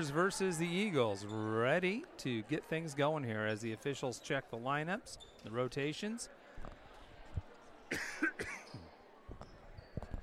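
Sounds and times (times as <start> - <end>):
speech: 0.0 - 6.8
murmur in a gym during a game: 0.0 - 10.2
sharp coughs in a high school gym: 7.9 - 8.8.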